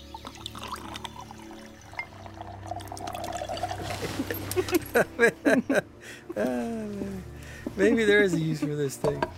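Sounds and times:
drink being poured into a glass: 0.0s - 4.0s
laughter: 3.9s - 7.0s, 7.7s - 9.0s
speech: 4.7s - 9.3s.

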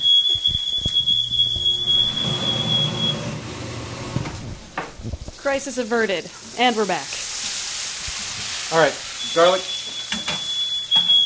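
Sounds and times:
smoke alarm beeping: 0.0s - 4.2s, 8.8s - 11.2s
low rumbling hum: 0.5s - 5.5s
speech: 5.5s - 7.2s, 8.7s - 9.7s
clattering kitchen noises: 9.8s - 11.2s.

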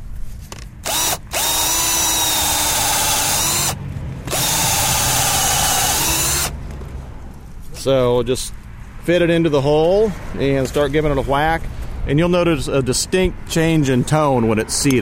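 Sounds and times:
power drill boring into a tree: 0.8s - 6.6s
speech: 7.8s - 14.9s.

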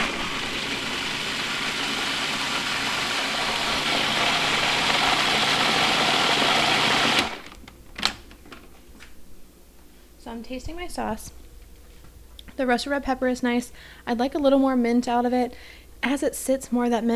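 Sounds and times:
blender pureeing harissa sauce with fresh mint leaves: 0.0s - 7.6s
speech: 10.5s - 11.4s, 12.6s - 17.1s.

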